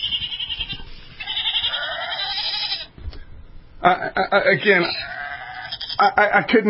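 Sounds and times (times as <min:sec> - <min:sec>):
sheep bleating played from a small electronic birthday greeting card: 0:00.0 - 0:02.9, 0:04.6 - 0:06.2
speech: 0:03.8 - 0:05.1, 0:06.0 - 0:06.6.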